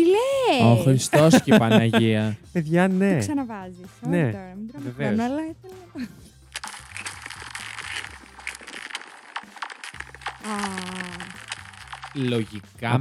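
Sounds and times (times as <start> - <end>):
speech: 0.0 - 6.3, 10.4 - 11.4, 12.1 - 12.9
laughter: 0.6 - 2.4
sharp cracks of very thin ice: 6.6 - 12.6.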